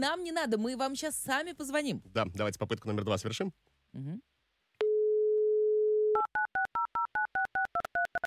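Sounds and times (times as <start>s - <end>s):
speech: 0.0s - 4.3s
telephone dial tone: 4.8s - 8.2s.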